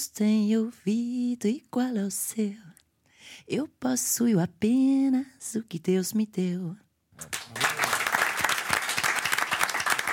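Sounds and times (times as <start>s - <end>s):
speech: 0.0s - 2.7s, 3.3s - 7.6s
one man clapping for himself: 7.2s - 10.1s.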